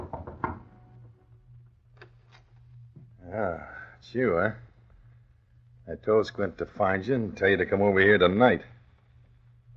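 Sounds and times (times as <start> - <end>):
knocking on wooden apartment door: 0.0 - 0.7
low steady hum: 0.0 - 9.7
speech: 3.4 - 4.6, 5.9 - 8.8.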